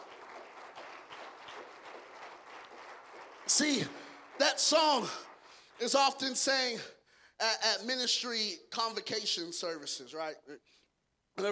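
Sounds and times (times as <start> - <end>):
crowd clapping: 0.0 - 6.9
speech: 3.5 - 10.8, 11.4 - 11.5.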